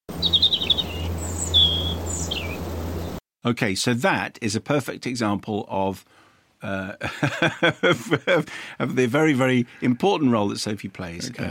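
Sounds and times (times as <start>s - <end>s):
birdsong sound effect censoring a rude word: 0.1s - 3.2s
low steady hum: 0.1s - 3.2s
speech: 3.4s - 11.4s
laughter: 6.8s - 9.0s, 11.2s - 11.4s.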